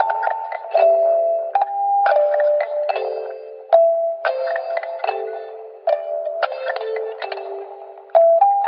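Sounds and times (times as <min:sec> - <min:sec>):
clockwork music box: 0:00.0 - 0:08.6.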